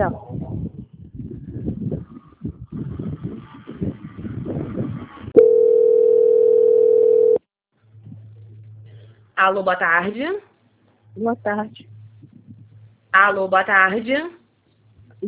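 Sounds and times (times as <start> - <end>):
speech: 0.0 - 0.3, 9.4 - 10.5, 11.2 - 12.0, 13.2 - 14.4
telephone line tone during call transfer: 5.4 - 7.4.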